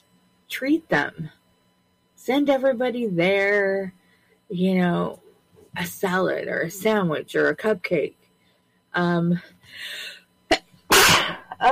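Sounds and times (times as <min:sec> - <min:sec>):
speech: 0:00.6 - 0:01.4, 0:02.2 - 0:05.2, 0:05.8 - 0:08.2, 0:09.0 - 0:10.1
person sneezing: 0:10.9 - 0:11.6.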